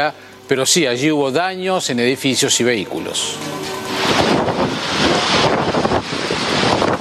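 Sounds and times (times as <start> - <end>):
speech: 0.0 - 5.9
tornado winds roaring in Marsala, Sicily, Italy: 0.0 - 6.9
heavy tornado gusts buffeting the microphone: 2.9 - 6.9.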